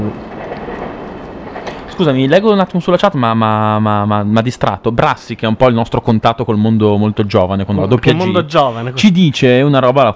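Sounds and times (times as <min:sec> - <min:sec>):
train passing by: 0:00.0 - 0:04.4
speech: 0:02.0 - 0:10.1.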